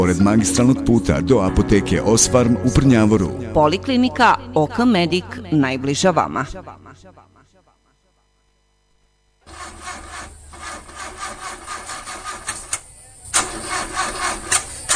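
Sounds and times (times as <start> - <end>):
speech: 0.0 - 7.3
old car engine cranking without catching: 9.5 - 14.9.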